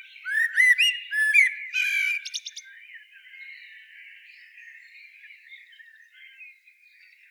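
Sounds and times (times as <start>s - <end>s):
Common blackbird Turdus merula squawking notes: 0.3s - 2.5s.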